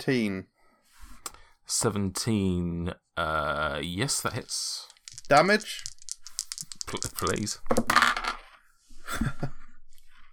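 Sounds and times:
speech: 0:00.0 - 0:00.5, 0:01.7 - 0:05.9, 0:06.9 - 0:08.2, 0:09.1 - 0:09.6
dice rolling on a hard surface: 0:04.3 - 0:08.6.

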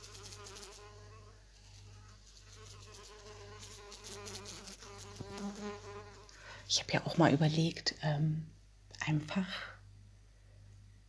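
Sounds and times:
small fly buzzing: 0:00.0 - 0:06.4
speech: 0:06.7 - 0:09.7.

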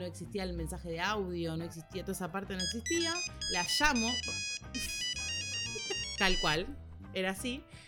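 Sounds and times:
speech: 0:00.0 - 0:04.9, 0:06.2 - 0:07.8
polyphonic Nokia 1100 mobile phone ringtone: 0:02.6 - 0:06.7.

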